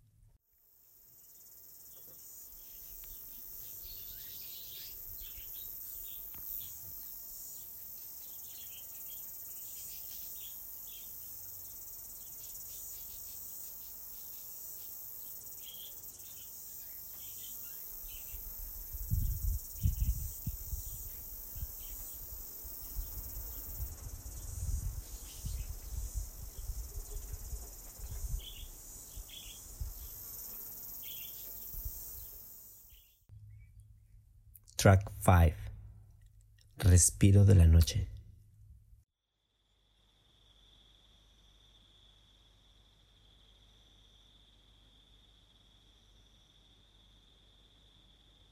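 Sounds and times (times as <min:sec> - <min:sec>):
flies droning in a high-pitched insect hum: 0:00.6 - 0:33.6
speech: 0:34.8 - 0:35.6, 0:36.9 - 0:38.1.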